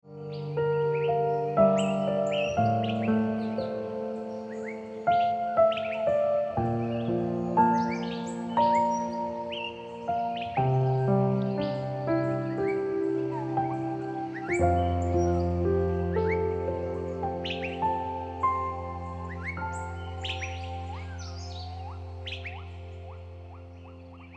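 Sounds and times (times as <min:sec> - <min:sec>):
piano ringtone music: 0:00.2 - 0:24.3.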